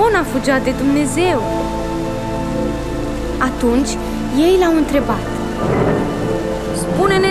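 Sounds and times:
steady roar of heavy rain: 0:00.0 - 0:07.2
speech: 0:00.2 - 0:01.9, 0:03.4 - 0:05.8
deep rumble of thunder: 0:04.9 - 0:07.2.

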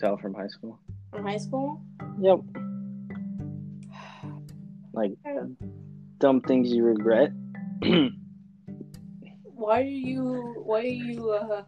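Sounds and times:
speech: 0:00.0 - 0:02.7, 0:05.0 - 0:08.2, 0:09.6 - 0:11.6
throat clearing: 0:07.8 - 0:08.2
voiced rasping hums and grunts: 0:07.8 - 0:08.2.

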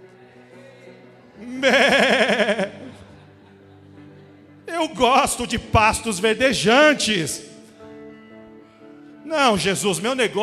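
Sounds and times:
speech: 0:01.4 - 0:02.5, 0:04.8 - 0:07.5, 0:09.3 - 0:10.4
person imitating a sheep bleating: 0:01.4 - 0:02.9
laughter: 0:01.4 - 0:05.7.

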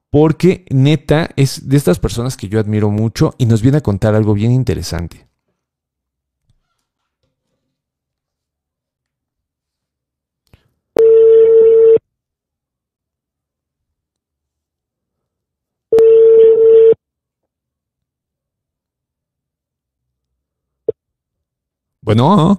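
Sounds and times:
speech: 0:00.1 - 0:05.3, 0:22.1 - 0:22.5
outgoing phone call ringback tones: 0:11.0 - 0:12.0, 0:15.9 - 0:17.0.

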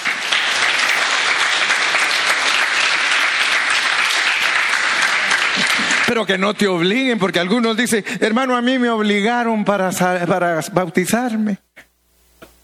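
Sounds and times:
large crowd applauding: 0:00.0 - 0:06.4
speech: 0:06.1 - 0:11.6.

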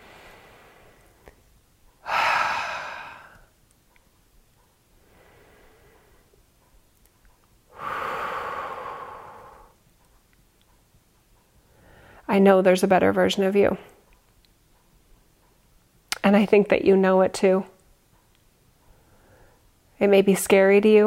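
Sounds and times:
deep slow breathing: 0:00.0 - 0:01.4, 0:02.0 - 0:03.6, 0:05.0 - 0:06.4, 0:07.7 - 0:09.8, 0:11.6 - 0:12.3, 0:18.8 - 0:19.7
speech: 0:12.3 - 0:13.9, 0:16.3 - 0:17.7, 0:20.0 - 0:21.0.

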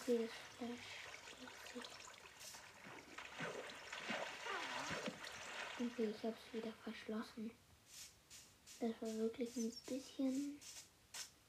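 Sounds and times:
water gushing and splashing: 0:00.0 - 0:06.8
speech: 0:00.1 - 0:02.1, 0:05.8 - 0:07.6, 0:08.8 - 0:10.7.

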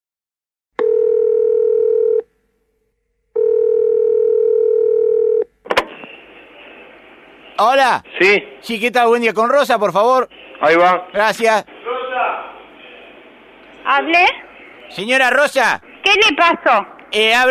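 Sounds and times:
long steady telephone ringing tones: 0:00.8 - 0:02.3, 0:03.4 - 0:05.5
speech: 0:07.6 - 0:11.7, 0:14.0 - 0:14.4, 0:14.9 - 0:17.5.

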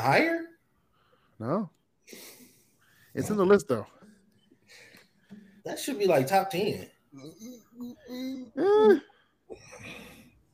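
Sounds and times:
speech: 0:00.0 - 0:00.5, 0:01.4 - 0:02.3, 0:03.2 - 0:04.0, 0:05.6 - 0:10.2
person murmuring: 0:07.1 - 0:09.1
person yawning: 0:07.2 - 0:10.2.

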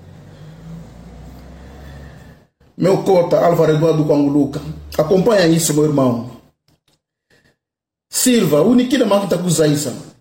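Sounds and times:
car engine revving as the car arrives: 0:00.0 - 0:05.9
speech: 0:02.8 - 0:06.4, 0:08.2 - 0:10.2.

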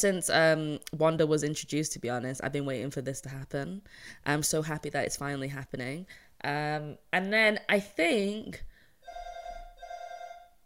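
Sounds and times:
speech: 0:00.0 - 0:08.7
doorbell ringing with shrill buzzing telephone-like tone: 0:09.0 - 0:10.6.

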